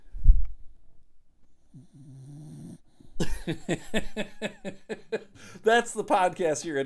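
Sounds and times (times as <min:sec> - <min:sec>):
small dog snoring: 0:01.7 - 0:03.1
laughter: 0:03.2 - 0:05.5
speech: 0:03.2 - 0:06.8.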